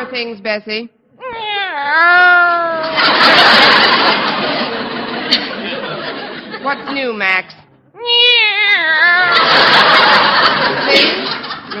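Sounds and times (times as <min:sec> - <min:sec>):
speech: 0:00.0 - 0:04.6, 0:06.6 - 0:10.0
cat meowing: 0:01.2 - 0:02.9, 0:08.0 - 0:09.5
laughter: 0:02.8 - 0:07.3, 0:09.0 - 0:11.7.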